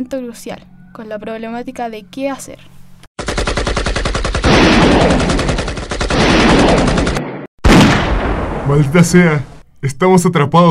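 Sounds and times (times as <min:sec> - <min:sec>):
speech: 0:00.0 - 0:02.8, 0:08.7 - 0:10.6
automatic gunfire: 0:03.2 - 0:08.2.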